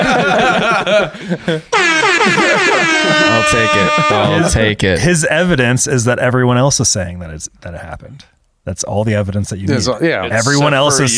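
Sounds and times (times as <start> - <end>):
laughter: 0.0 - 4.8
speech: 0.3 - 11.1
air horn sound effect: 1.7 - 4.5
wavering tones: 1.8 - 4.6.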